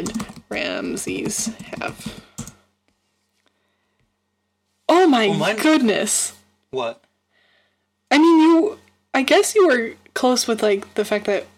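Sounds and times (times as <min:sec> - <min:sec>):
typing on a computer keyboard: 0:00.0 - 0:02.6
speech: 0:00.5 - 0:02.3, 0:05.2 - 0:07.0, 0:08.1 - 0:11.5.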